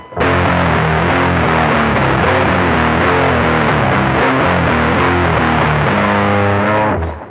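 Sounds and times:
distorted electric guitar riff, tuned down: 0:00.0 - 0:07.2.

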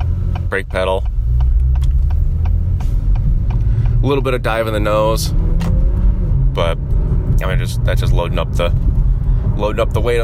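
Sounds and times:
2021 Acura TLX Type S 3-liter turbocharged engine exhaust rumble: 0:00.0 - 0:10.2
speech: 0:00.5 - 0:01.2, 0:04.0 - 0:05.4, 0:06.6 - 0:08.9, 0:09.6 - 0:10.2.

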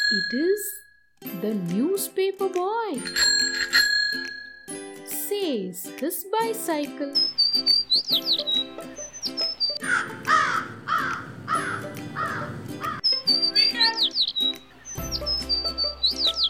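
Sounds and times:
speech: 0:00.1 - 0:03.5, 0:05.3 - 0:10.7
sparrows chirping: 0:07.2 - 0:16.4
crow cawing: 0:09.8 - 0:13.1.

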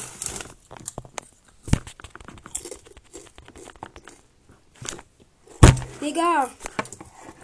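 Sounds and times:
sharp loud knocks of a falling microphone: 0:05.6 - 0:06.0
speech: 0:06.0 - 0:06.7.

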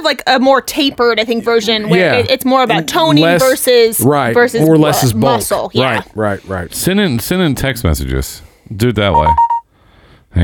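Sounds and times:
speech: 0:00.0 - 0:09.5
phone AirDrop notification chime: 0:09.1 - 0:09.6.

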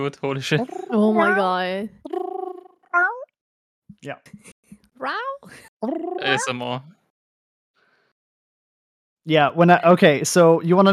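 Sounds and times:
speech: 0:00.0 - 0:02.1, 0:04.0 - 0:07.0, 0:09.2 - 0:10.9
person imitating a cat meowing: 0:00.6 - 0:01.4, 0:02.1 - 0:03.2, 0:05.9 - 0:06.7.

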